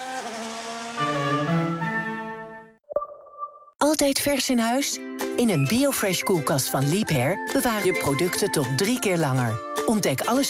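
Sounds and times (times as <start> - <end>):
race car engines revving at a motor race at Zandvoort: 0.0 - 2.5
speech: 3.9 - 10.4.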